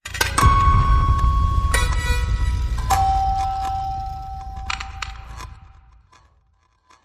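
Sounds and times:
music box melody: 0.4 - 5.4.

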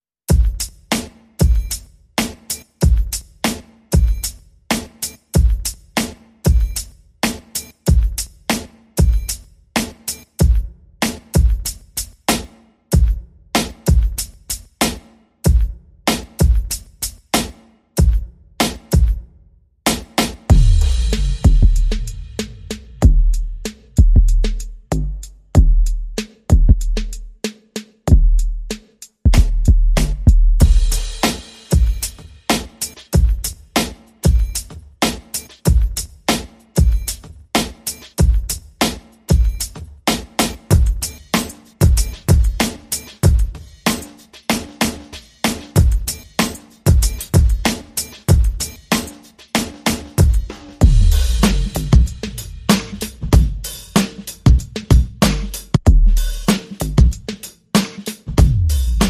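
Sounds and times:
drums: 0.2 - 59.0.

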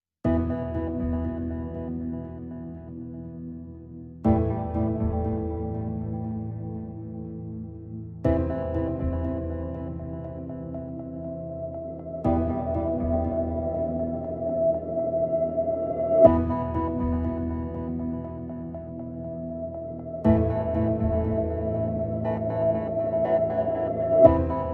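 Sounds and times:
piano: 0.2 - 24.7.

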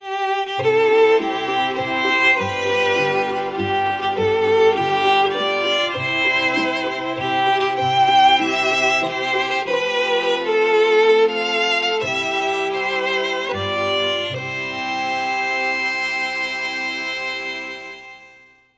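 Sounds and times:
string quartet playing: 0.0 - 18.6.

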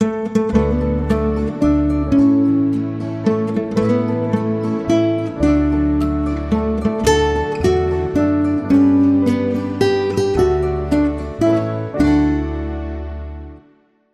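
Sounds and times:
nylon-string guitars playing a birthday song: 0.0 - 13.7
piano playing a birthday song: 0.0 - 14.1.

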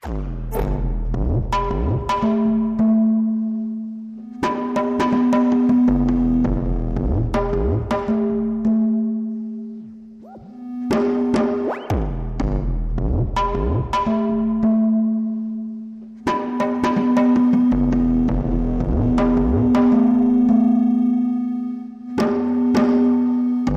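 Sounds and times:
mild musical percussion pulses: 0.0 - 23.7.

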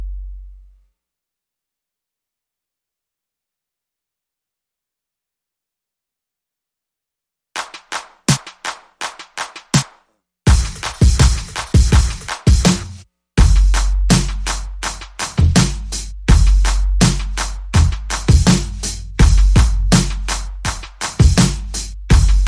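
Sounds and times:
drums and percussion: 7.6 - 22.4.

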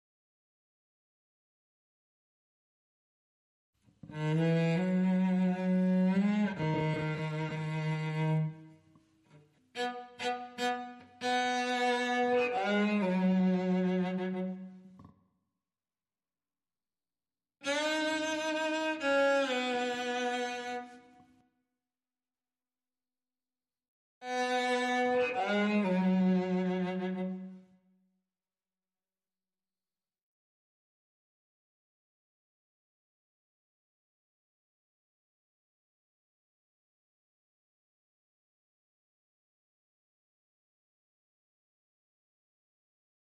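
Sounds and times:
clean cello: 4.0 - 15.2, 17.6 - 21.4, 24.2 - 27.9.

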